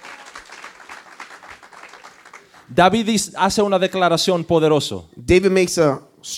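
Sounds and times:
crowd applauding: 0:00.0 - 0:02.7
speech: 0:02.7 - 0:06.3.

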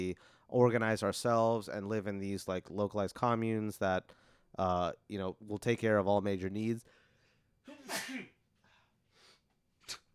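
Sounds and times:
speech: 0:00.0 - 0:07.0
loud sneeze with voiced build-up: 0:07.7 - 0:08.4
brief sharp sniff: 0:09.1 - 0:10.1.

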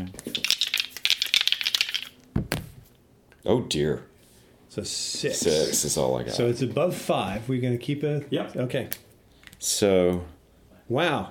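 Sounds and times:
two dice clattering across a hard surface: 0:00.3 - 0:02.2
speech: 0:03.4 - 0:04.1, 0:04.8 - 0:11.2.

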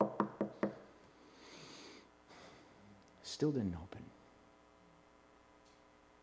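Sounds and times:
firm knocking on a door: 0:00.0 - 0:00.8
speech: 0:03.3 - 0:04.2.

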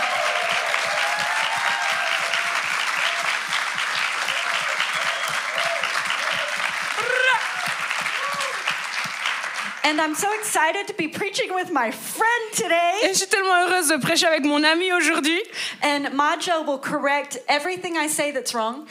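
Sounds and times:
crowd whoops and cheers: 0:00.0 - 0:08.8
audience applause: 0:00.0 - 0:10.5
speech: 0:09.9 - 0:18.8.

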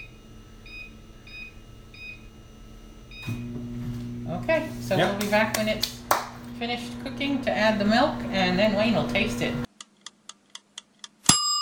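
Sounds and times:
microwave oven keypad beeps: 0:00.0 - 0:04.4
microwave oven low running hum: 0:00.0 - 0:09.7
speech: 0:03.3 - 0:03.6, 0:04.3 - 0:06.0, 0:06.6 - 0:09.7.

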